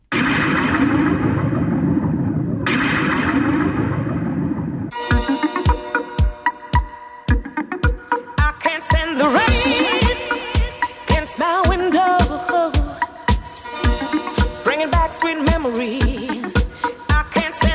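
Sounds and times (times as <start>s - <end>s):
electronic fake thunder rumble effect: 0.1s - 5.3s
disco-style track with punchy drum beats: 4.9s - 17.7s.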